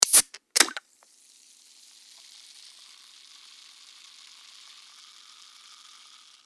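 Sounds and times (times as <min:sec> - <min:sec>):
can of juice being opened: 0:00.0 - 0:00.8.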